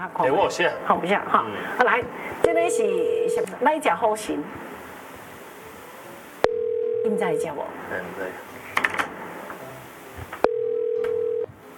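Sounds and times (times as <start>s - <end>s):
speech: 0.0s - 4.8s, 7.0s - 8.5s
faint noise: 0.0s - 11.7s
telephone ringback tone: 2.5s - 3.5s, 6.4s - 7.6s, 10.4s - 11.5s.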